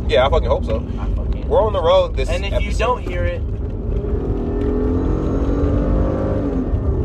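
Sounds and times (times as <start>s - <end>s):
Lamborghini engine drone heard from inside while driving on the road: 0.0s - 7.0s
speech: 0.1s - 3.5s.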